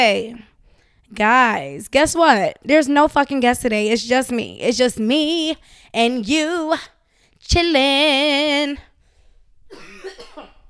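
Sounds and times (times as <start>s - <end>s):
speech: 0.0s - 0.5s, 1.1s - 8.9s
sick person coughing: 9.7s - 10.6s.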